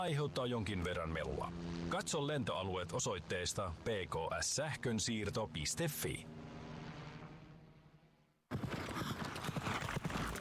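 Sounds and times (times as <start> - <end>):
speech: 0.0 - 6.6
horses' hooves clattering at city trotting races in a fortress: 8.5 - 10.3.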